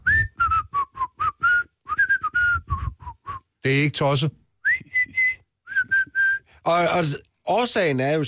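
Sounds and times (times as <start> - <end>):
person whistling a short melodic tune: 0.0 - 3.5, 4.6 - 6.5
speech: 3.6 - 4.4, 6.6 - 8.2.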